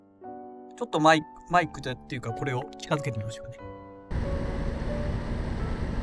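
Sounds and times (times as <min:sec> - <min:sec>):
speech: 0:00.8 - 0:03.8
soundproof booth ventilation fan humming: 0:04.1 - 0:06.0.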